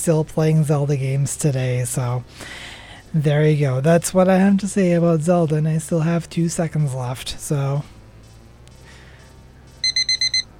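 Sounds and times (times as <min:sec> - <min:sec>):
speech: 0:00.0 - 0:07.9
faint hum: 0:00.0 - 0:10.5
timer beeping: 0:07.2 - 0:10.5.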